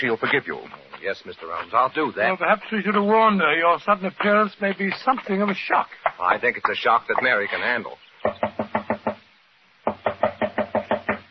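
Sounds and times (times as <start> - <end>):
speech: 0.0 - 8.5
knocking on a door: 8.2 - 9.2, 9.8 - 11.3.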